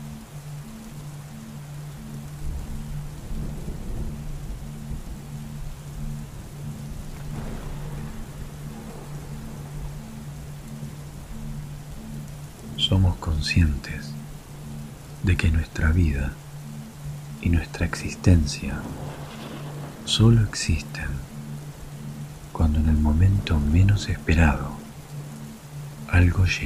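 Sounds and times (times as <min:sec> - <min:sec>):
dense hiss of rain in a summer thunderstorm: 0:00.0 - 0:26.6
faint low pulsing hum: 0:00.0 - 0:26.6
deep rolls of thunder in a summer thunderstorm: 0:02.4 - 0:10.5, 0:18.6 - 0:21.3
speech: 0:12.9 - 0:14.1, 0:15.2 - 0:16.4, 0:17.4 - 0:19.1, 0:20.1 - 0:21.3, 0:22.7 - 0:24.7, 0:26.1 - 0:26.6.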